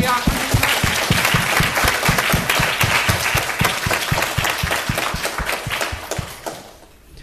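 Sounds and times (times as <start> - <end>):
room full of people applauding: 0.0 - 6.9.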